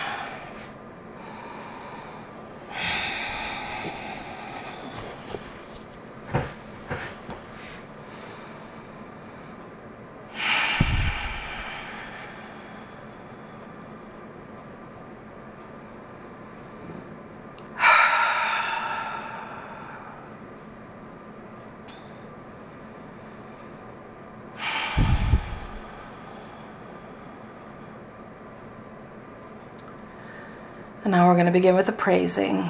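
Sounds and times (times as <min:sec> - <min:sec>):
long slow deep breaths taken to settle into prayer and meditation: 0:00.0 - 0:05.5, 0:07.6 - 0:09.7, 0:10.3 - 0:14.2, 0:17.8 - 0:20.4, 0:24.6 - 0:28.1, 0:30.1 - 0:31.0
speech: 0:31.1 - 0:32.6.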